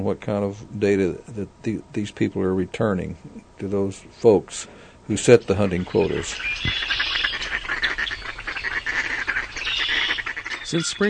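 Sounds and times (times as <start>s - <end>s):
speech: 0.0s - 7.0s, 10.7s - 11.0s
flock of migrating birds calling: 4.7s - 11.0s.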